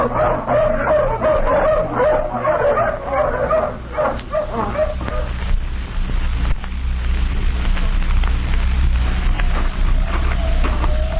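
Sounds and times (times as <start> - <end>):
pack of hounds barking and yipping: 0.0 - 5.4
low rumbling background: 0.0 - 11.1.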